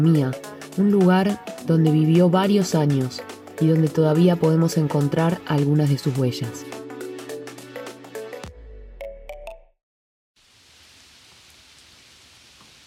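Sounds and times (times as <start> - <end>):
speech: 0.0 - 6.8
heavy rain with large hard drops splatting against a balcony: 10.4 - 12.8.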